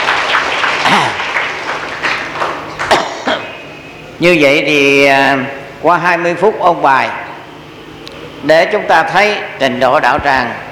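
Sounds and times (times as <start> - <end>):
Buddhist congregation applauding: 0.0 - 3.1
speech: 1.0 - 1.2, 4.2 - 7.2, 8.4 - 10.6.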